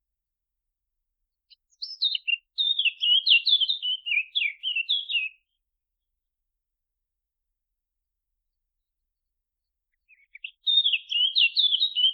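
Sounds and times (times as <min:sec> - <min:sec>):
Eurasian blackcap Sylvia atricapilla warbling song: 0:01.5 - 0:05.4, 0:10.0 - 0:12.1.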